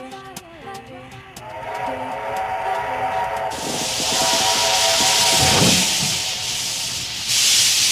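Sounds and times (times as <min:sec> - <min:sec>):
steam train metallic tonal squeals and clanks: 0:01.4 - 0:06.8
loud broad hiss of escaping steam from a steam train: 0:01.4 - 0:07.9.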